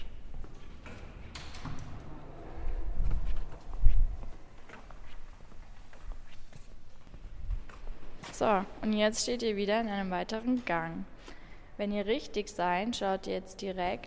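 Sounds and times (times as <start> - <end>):
footsteps on a hard floor at the foot of a staircase: 2.7 - 8.6
speech: 8.4 - 11.1, 11.8 - 14.0.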